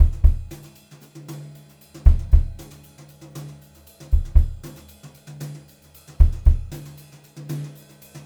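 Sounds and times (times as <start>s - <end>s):
brushed drum loops: 0.0s - 0.9s, 2.0s - 3.0s, 3.9s - 5.0s, 6.0s - 7.1s.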